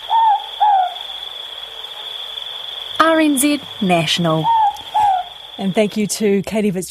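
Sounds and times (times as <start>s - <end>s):
morepork owl two-note call: 0.0s - 5.9s
faint high-pitched hiss: 0.0s - 6.9s
speech: 3.2s - 4.6s, 5.6s - 6.9s.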